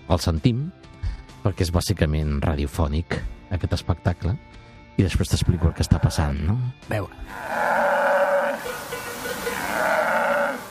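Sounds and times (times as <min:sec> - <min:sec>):
speech: 0:00.1 - 0:07.7
male red deer bellowing during the October rut: 0:05.3 - 0:06.4, 0:07.2 - 0:10.6.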